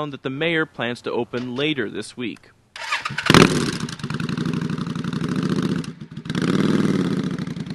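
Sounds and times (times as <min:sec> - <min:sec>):
speech: 0:00.0 - 0:04.1
motorcycle engine idling: 0:02.8 - 0:07.7.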